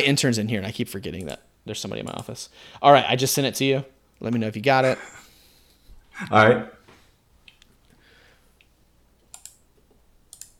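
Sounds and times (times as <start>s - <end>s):
speech: 0.0s - 5.2s, 6.2s - 6.8s
quiet hiss: 0.0s - 10.5s
computer mouse clicks refreshing a web page: 8.6s - 10.5s.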